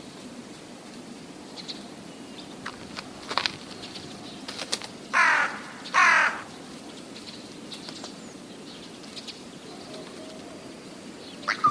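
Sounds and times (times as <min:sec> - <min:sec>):
rook cawing: 0:05.1 - 0:06.7.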